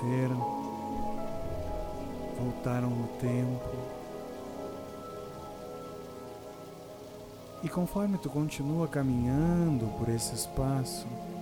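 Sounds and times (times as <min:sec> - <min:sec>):
flowing water: 0:00.0 - 0:11.4
speech: 0:02.6 - 0:04.0, 0:07.6 - 0:11.4.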